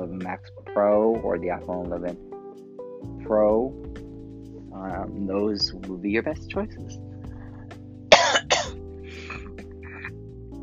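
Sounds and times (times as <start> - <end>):
speech: 0.2 - 2.3, 3.0 - 4.0, 4.7 - 7.1
person coughing and clearing throat from a tickle: 8.1 - 10.1.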